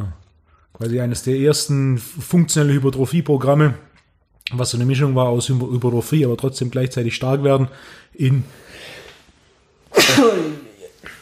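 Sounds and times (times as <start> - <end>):
speech: 0.8 - 3.9, 4.5 - 9.0, 10.0 - 10.6
sneeze: 9.9 - 11.2.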